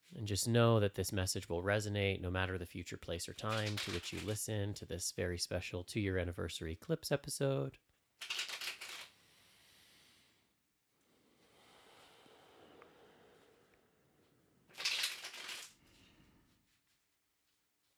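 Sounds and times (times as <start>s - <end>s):
speech: 0.2s - 8.4s
tarot cards being shuffled: 3.4s - 4.4s, 8.2s - 9.1s, 14.8s - 15.8s.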